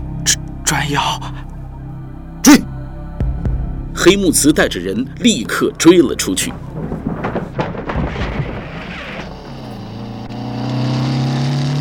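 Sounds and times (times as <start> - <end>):
speech: 0.2 - 1.5, 4.0 - 6.9
motorcycle engine humming with steady harmonic drone: 1.2 - 11.7
rough rumbling noise: 2.8 - 10.8.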